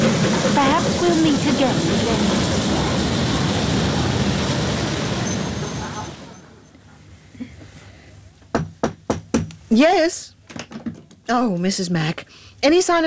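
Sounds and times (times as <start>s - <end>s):
train arriving with a loud steady rumbling roar: 0.0s - 6.6s
speech: 1.0s - 2.6s, 9.7s - 10.4s, 11.3s - 13.0s.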